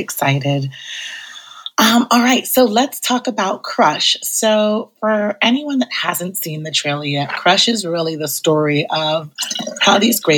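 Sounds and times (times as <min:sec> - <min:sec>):
speech: 0:00.0 - 0:01.2, 0:01.8 - 0:10.3
champagne being poured: 0:09.4 - 0:10.3.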